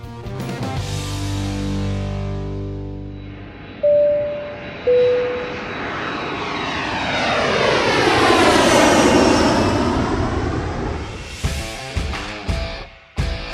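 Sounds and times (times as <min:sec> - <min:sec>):
airplane engine roaring during takeoff: 0:00.0 - 0:12.8
chime tones: 0:03.8 - 0:06.0.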